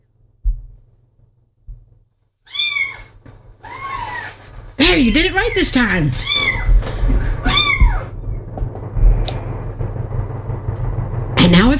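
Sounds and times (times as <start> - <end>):
soft low thumps: 0.0 - 2.4, 3.1 - 3.6, 4.5 - 11.7
faint hum: 0.0 - 11.7
kitten meowing: 2.5 - 4.4, 6.2 - 6.8, 7.4 - 8.1
speech: 4.8 - 6.6.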